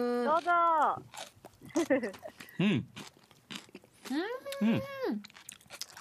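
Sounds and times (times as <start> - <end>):
eater's drawn-out appreciative hum: 0.0 - 0.4, 4.1 - 5.2
speech: 0.0 - 3.1, 4.1 - 5.4
crisp chewing of crunchy diced vegetables over tofu: 0.2 - 6.0.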